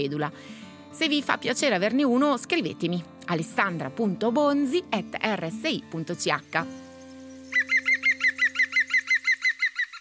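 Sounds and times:
speech: 0.0s - 6.8s
green woodpecker laugh-like call: 7.2s - 10.0s.

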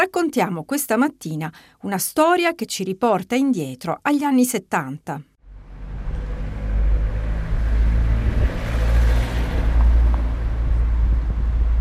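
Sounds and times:
speech: 0.0s - 5.3s
steady traffic rumble on a city street in Lugano: 5.4s - 11.7s
vehicle rushing past on Viale Francini in Lugano: 5.4s - 11.7s.

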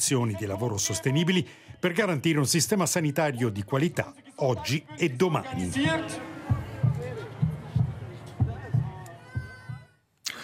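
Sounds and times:
speech: 0.0s - 6.3s
heartbeat thumping in double beats: 5.5s - 9.9s
faint murmur: 5.5s - 10.0s.

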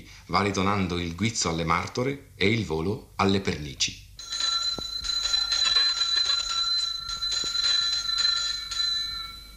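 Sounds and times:
speech: 0.3s - 4.0s
small bell ringing: 4.2s - 9.5s.

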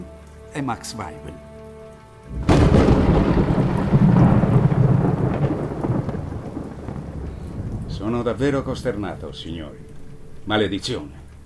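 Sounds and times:
heavy pouring rain: 0.0s - 11.4s
speech: 0.5s - 1.5s, 8.0s - 11.2s
thunderclap and rolling thunder: 2.3s - 10.5s.

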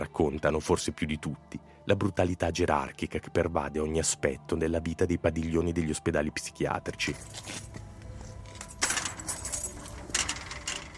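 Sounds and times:
speech: 0.0s - 7.8s
metal keys jangling: 8.4s - 10.9s.

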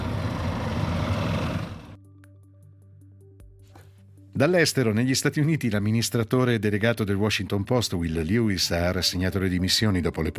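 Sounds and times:
shuttle bus diesel engines starting up: 0.0s - 2.0s
speech: 4.4s - 10.3s.

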